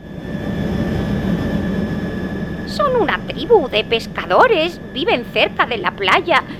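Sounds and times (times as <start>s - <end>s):
helicopter engine roaring in flight with high whine: 0.0s - 6.5s
speech: 2.8s - 6.5s.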